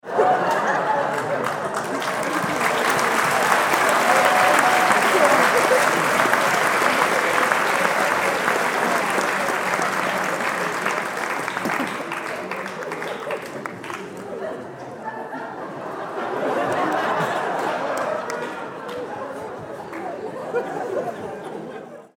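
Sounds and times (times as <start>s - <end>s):
audience laughing in theater: 0.0s - 22.1s
audience applauding in theater: 0.1s - 14.5s, 16.2s - 21.2s.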